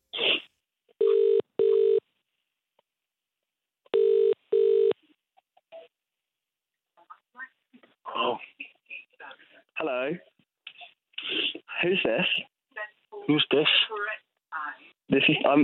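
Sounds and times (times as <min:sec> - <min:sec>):
telephone ringback tone in double-burst pattern: 0:01.0 - 0:02.0, 0:03.9 - 0:05.0
speech: 0:10.0 - 0:10.2, 0:11.9 - 0:12.5, 0:13.3 - 0:14.0, 0:15.1 - 0:15.6.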